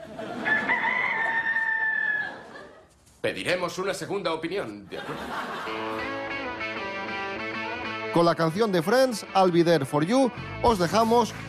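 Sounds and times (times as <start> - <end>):
laughter: 0.0 - 3.0, 4.9 - 6.4
rooster crowing: 0.3 - 2.6
speech: 3.2 - 6.2, 8.1 - 11.4.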